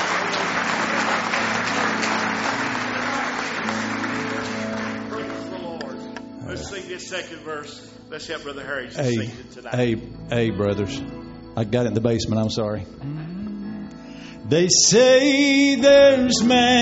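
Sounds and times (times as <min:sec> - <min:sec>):
congregation clapping hands in praise at a church service: 0:00.0 - 0:06.9, 0:15.7 - 0:16.8
speech: 0:07.0 - 0:13.3, 0:14.5 - 0:16.8.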